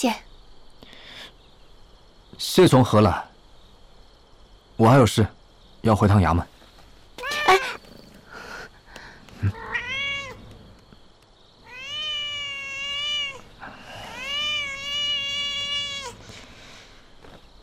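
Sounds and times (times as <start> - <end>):
speech: 0.0 - 0.2, 2.4 - 3.3, 4.8 - 6.5
cat meowing: 7.2 - 8.0, 9.4 - 10.4, 11.6 - 16.2.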